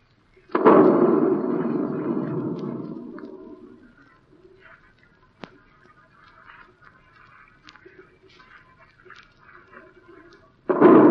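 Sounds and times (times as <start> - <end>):
faint crackles: 0.0 - 11.1
artillery guns firing on command: 0.5 - 3.8, 10.7 - 11.1.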